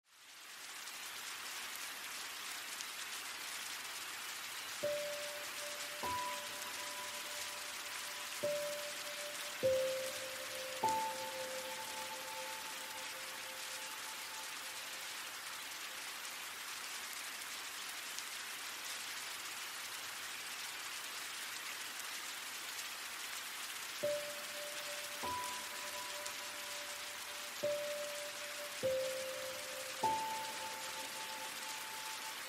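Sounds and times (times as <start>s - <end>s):
rain: 0.0s - 32.4s
relaxing music: 4.8s - 15.9s, 24.0s - 32.4s.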